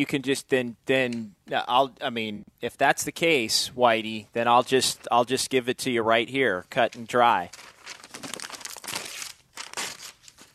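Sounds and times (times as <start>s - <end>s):
speech: 0.0s - 8.3s
paper torn with a long rasping rip: 7.5s - 10.5s.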